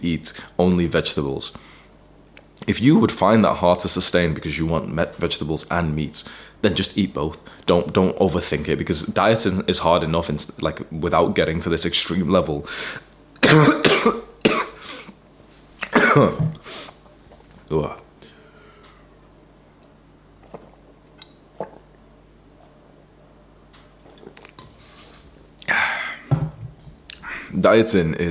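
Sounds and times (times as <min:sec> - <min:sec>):
speech: 0:00.0 - 0:01.8, 0:02.6 - 0:14.2, 0:16.2 - 0:16.8, 0:17.7 - 0:18.0, 0:27.6 - 0:28.2
faint breathy sounds: 0:01.6 - 0:02.0, 0:06.2 - 0:06.6, 0:12.6 - 0:13.1, 0:18.2 - 0:19.2, 0:27.2 - 0:27.6
person coughing after something went down the throat: 0:13.4 - 0:15.2, 0:15.8 - 0:16.6, 0:25.7 - 0:26.3.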